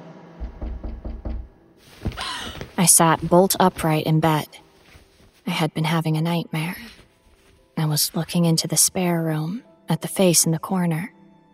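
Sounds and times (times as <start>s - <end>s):
brief thud: 0.4s - 2.2s
soft knocking on a bedroom door: 0.4s - 2.2s
speech: 2.8s - 4.6s, 5.5s - 6.8s, 7.8s - 11.2s.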